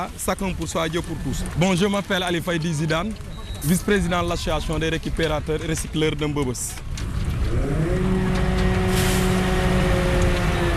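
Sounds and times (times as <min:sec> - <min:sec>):
speech: 0:00.0 - 0:06.9
heavy garbage truck engine rumbling arriving at a dump: 0:00.0 - 0:10.7
outdoor noise at a dump: 0:00.0 - 0:10.7
garbage truck air brakes hissing: 0:08.9 - 0:09.5.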